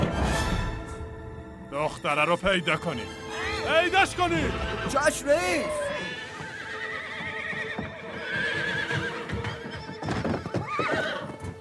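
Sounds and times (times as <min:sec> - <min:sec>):
speech: 0:01.8 - 0:05.9
agitated horse whinnying: 0:04.4 - 0:11.5
hooves clopping: 0:04.6 - 0:11.5.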